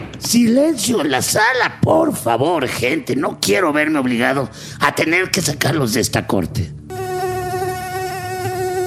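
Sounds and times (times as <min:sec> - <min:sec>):
speech: 0:00.3 - 0:06.9
fly buzzing: 0:06.8 - 0:08.8.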